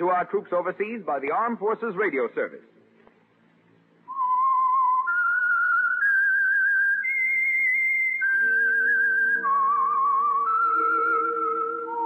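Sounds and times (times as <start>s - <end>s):
speech: 0.0s - 2.8s
person whistling a slow wavering melody: 4.1s - 11.9s.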